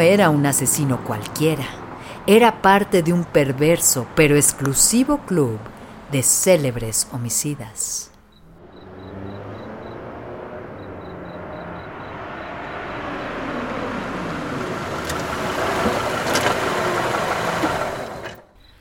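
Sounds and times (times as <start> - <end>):
speech: 0.0 - 8.1
car engine idling: 8.2 - 18.6.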